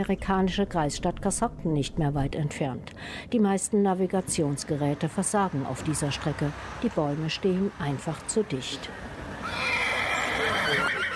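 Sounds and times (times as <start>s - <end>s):
speech: 0.0s - 9.8s, 10.4s - 11.0s
horses neighing in a forest: 9.3s - 11.1s.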